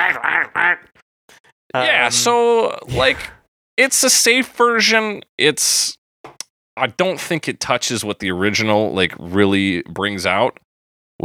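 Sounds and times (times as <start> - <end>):
person imitating a duck with their voice to mimic a discordant piano chord: 0.0 - 0.9
speech: 1.7 - 10.6.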